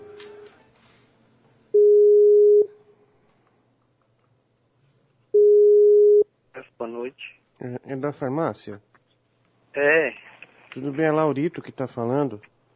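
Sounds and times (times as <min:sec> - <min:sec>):
faint noise: 0:00.0 - 0:12.7
telephone ringing tone while calling a pharmacy: 0:01.8 - 0:02.7
speech: 0:07.1 - 0:08.9, 0:09.8 - 0:10.2, 0:10.8 - 0:12.5.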